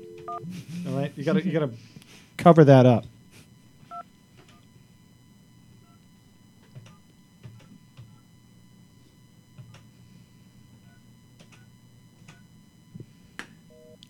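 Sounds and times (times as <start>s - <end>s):
telephone keypad dialing tones: 0.0s - 0.4s
low continuous hum: 0.0s - 14.0s
speech: 0.4s - 3.1s.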